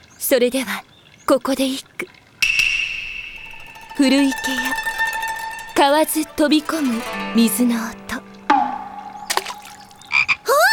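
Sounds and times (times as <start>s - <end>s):
speech: 0.3s - 2.2s, 4.0s - 4.9s, 5.8s - 8.0s
frog croaking by an old pond: 8.5s - 10.5s.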